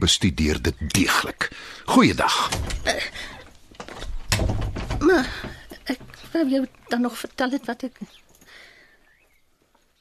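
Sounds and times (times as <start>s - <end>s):
speech: 0.0s - 3.4s, 5.1s - 8.2s
door shutting with thud: 2.4s - 3.1s, 4.0s - 6.2s.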